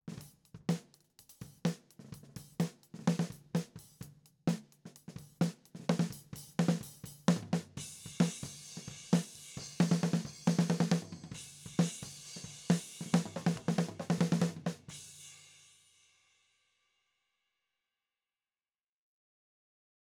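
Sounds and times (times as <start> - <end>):
snare drum: 0.1 - 15.2.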